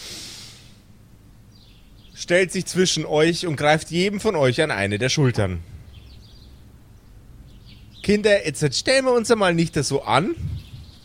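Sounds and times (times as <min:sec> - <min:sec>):
deep snorting breath drawn in sharply through the nose: 0:00.0 - 0:00.8
speech: 0:02.2 - 0:05.7, 0:08.1 - 0:10.6.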